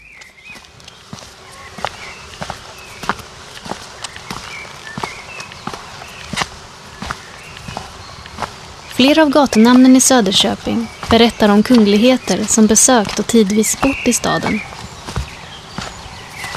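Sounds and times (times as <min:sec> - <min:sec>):
faint birdsong: 0:00.0 - 0:16.5
footsteps walking along a street in Söderköping, Sweden: 0:00.0 - 0:16.5
soft outdoor hum: 0:00.0 - 0:16.5
speech: 0:09.0 - 0:14.7.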